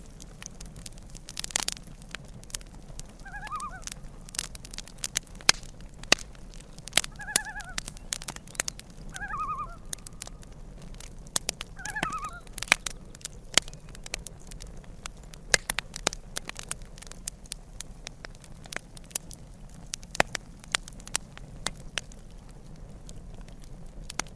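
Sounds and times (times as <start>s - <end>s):
campfire crackling and popping: 0.0s - 24.3s
loon calls: 3.2s - 3.9s, 7.1s - 7.9s, 9.1s - 10.0s, 11.8s - 12.6s.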